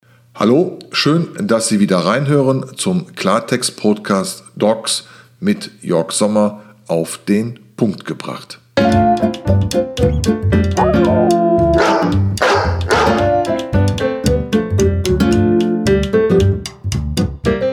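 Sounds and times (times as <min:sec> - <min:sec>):
speech: 0:00.4 - 0:11.4
bright busy music track: 0:08.8 - 0:17.7
young dog yapping with sharp barks: 0:10.8 - 0:13.3.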